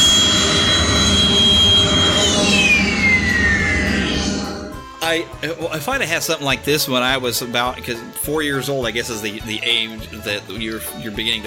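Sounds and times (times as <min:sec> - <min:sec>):
toy jet engine shutdown turbine whine: 0:00.0 - 0:05.0
speech: 0:05.2 - 0:11.4.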